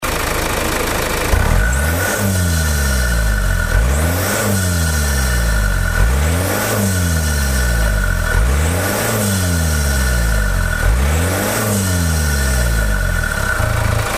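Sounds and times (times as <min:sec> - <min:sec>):
Mazda CX5 SkyActiv-D diesel engine intake: 0:00.0 - 0:14.1.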